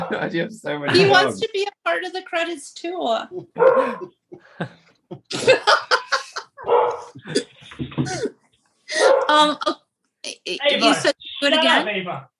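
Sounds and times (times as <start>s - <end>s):
laughter: 0.0s - 1.4s, 3.2s - 8.3s
speech: 0.1s - 6.0s, 6.6s - 12.3s
guide dog barking loudly: 3.6s - 4.0s, 6.6s - 7.2s, 9.0s - 9.3s.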